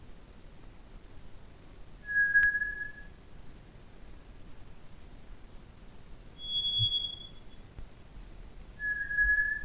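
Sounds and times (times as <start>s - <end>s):
faint high tones: 0.5s - 1.2s, 2.0s - 4.0s, 4.6s - 7.8s
White's thrush song of long thin pure whistles: 2.0s - 4.0s, 5.8s - 7.7s, 8.8s - 9.6s.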